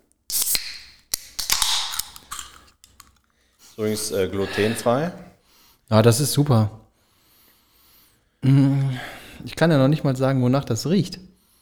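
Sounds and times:
clicks and crinkly bursts: 0.0 - 3.8
can of lime hard seltzer cracked open with fizzing hiss: 0.3 - 3.1
speech: 3.8 - 5.3, 5.9 - 6.8, 9.4 - 11.3.

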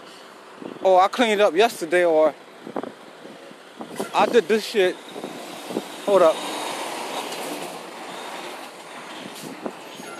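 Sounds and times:
speech: 0.8 - 2.4, 4.2 - 5.1, 6.1 - 6.5
large truck passing by with engine and road noise: 2.6 - 10.1.

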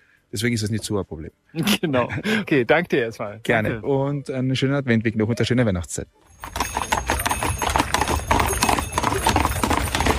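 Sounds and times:
speech: 0.3 - 6.6
laughter: 1.6 - 2.6
horse hooves clip-clopping pulling a carriage through a snowy forest: 6.3 - 10.1.

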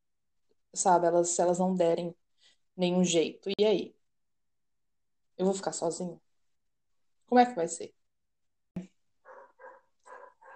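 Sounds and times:
speech: 0.7 - 2.2, 2.8 - 4.0, 5.4 - 6.2, 7.3 - 8.0
dog barking: 9.2 - 10.5.

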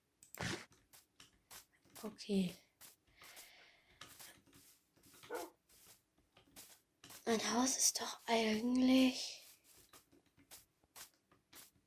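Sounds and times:
speech: 2.0 - 2.6, 7.3 - 9.4
video game wolf barking: 5.2 - 5.6.

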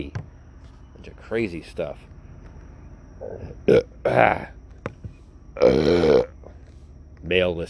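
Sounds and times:
speech: 1.3 - 2.1, 3.2 - 4.6, 5.6 - 6.3, 7.2 - 7.6
person burping: 3.2 - 4.5, 5.6 - 6.5.

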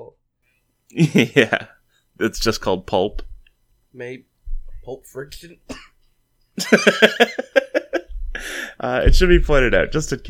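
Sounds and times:
speech: 0.9 - 3.3, 3.9 - 5.9, 6.6 - 7.5, 8.8 - 10.2
person under the weather coughing: 5.7 - 6.0
laughter: 6.6 - 8.6.

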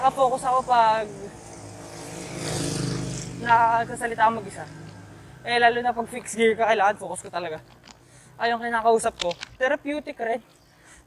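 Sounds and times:
speech: 0.0 - 1.4, 3.4 - 4.8, 5.4 - 7.8, 8.4 - 10.5
truck engine drone passing on the road: 0.0 - 8.4.

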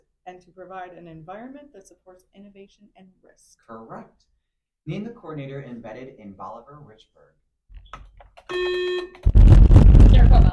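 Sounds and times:
speech: 0.3 - 9.3
electronic quiz game buzzer: 8.5 - 9.4.

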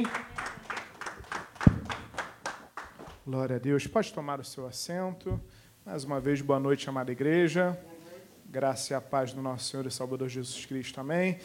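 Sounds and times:
speech: 0.0 - 0.3, 3.3 - 11.4
audience clapping rhythmically: 0.0 - 3.3.

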